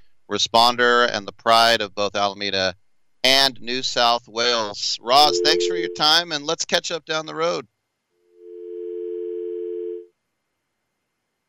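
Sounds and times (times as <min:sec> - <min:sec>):
speech: 0:00.3 - 0:07.7
steady continuous telephone dial tone: 0:08.5 - 0:10.0.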